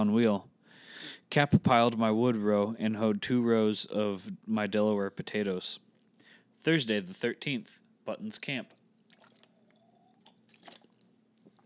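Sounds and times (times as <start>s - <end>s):
speech: 0.0s - 0.5s, 1.2s - 5.8s, 6.6s - 8.8s
person sipping water: 5.8s - 6.4s, 8.7s - 11.6s
person swallowing water with soft wet gulps: 8.7s - 11.1s.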